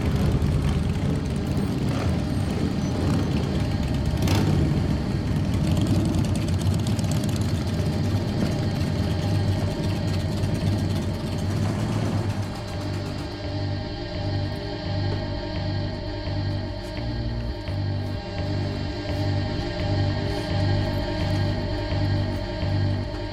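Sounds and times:
motorcycles riding along a road: 0.0 - 23.3.

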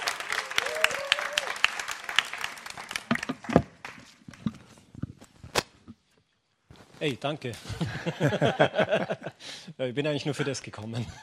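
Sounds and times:
audience applause at a church teaching event: 0.0 - 4.0
speech: 7.0 - 11.2
laughter: 7.6 - 9.4, 10.3 - 11.2.

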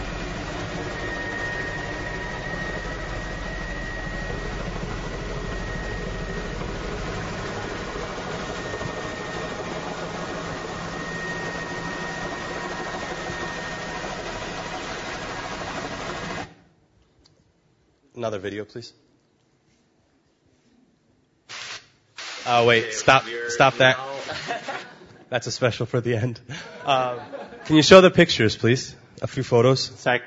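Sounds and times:
aircraft engine and cabin drone during landing in Malawi: 0.0 - 16.6
speech: 18.2 - 19.0, 22.5 - 24.7, 25.3 - 30.2
laughter: 23.7 - 25.3, 26.5 - 27.9.

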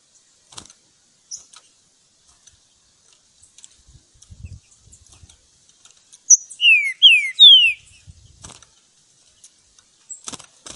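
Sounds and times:
Green-winged Saltator singing in the bush: 6.3 - 8.0.

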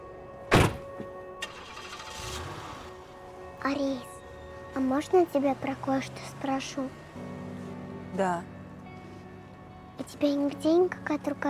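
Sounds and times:
car door thudding shut as a person gets into a car: 0.5 - 1.1
speech: 3.6 - 4.1, 4.7 - 7.0, 8.1 - 8.5, 10.0 - 11.4.

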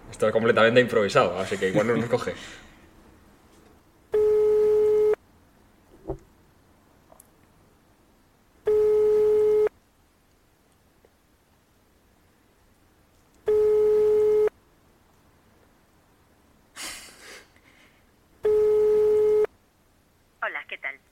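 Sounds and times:
speech: 0.2 - 2.7
telephone ringing tone on an outgoing call going unanswered: 4.1 - 5.2, 8.7 - 9.7, 13.5 - 14.5, 18.4 - 19.5.

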